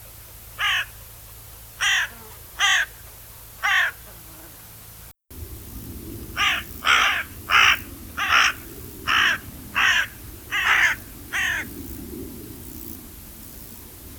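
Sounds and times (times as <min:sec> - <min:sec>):
low rumbling background noise: 0:00.0 - 0:14.1
carrion crow Corvus corone cawing: 0:00.6 - 0:00.9, 0:01.8 - 0:03.0, 0:03.6 - 0:04.0, 0:06.4 - 0:11.8.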